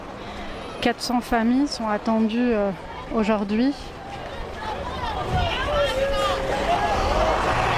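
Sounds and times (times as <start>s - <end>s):
buses pulling in at a refugee camp: 0.0s - 7.7s
murmur of many voices: 0.0s - 7.7s
outdoor bustle: 0.0s - 7.7s
speech: 0.8s - 4.0s.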